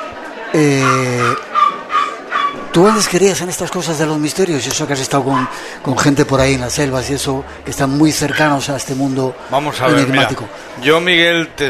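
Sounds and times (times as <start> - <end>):
murmuring voices: 0.0 - 11.6
speech: 0.5 - 1.4, 2.8 - 11.6
small dog whining: 0.8 - 2.5.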